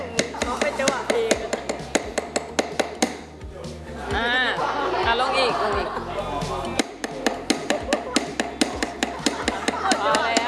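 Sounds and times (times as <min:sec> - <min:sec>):
sharp hammer strikes driving down: 0:00.0 - 0:03.3, 0:06.6 - 0:10.4
laughter: 0:03.9 - 0:10.4.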